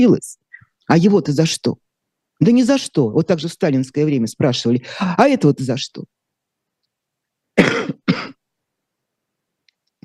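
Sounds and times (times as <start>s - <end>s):
speech: 0.0s - 1.8s, 2.4s - 6.2s
person coughing harshly: 7.6s - 8.4s.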